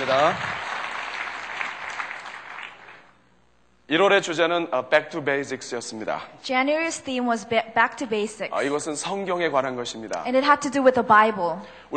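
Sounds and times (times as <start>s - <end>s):
audience applause: 0.0s - 3.2s
speech: 0.1s - 0.5s, 3.9s - 11.9s.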